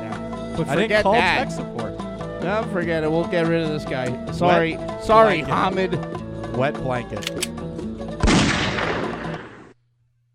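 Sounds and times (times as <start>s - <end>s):
speech: 0.6s - 1.8s, 2.4s - 7.5s
gunshot sound effect in a comedy skit: 8.2s - 9.8s.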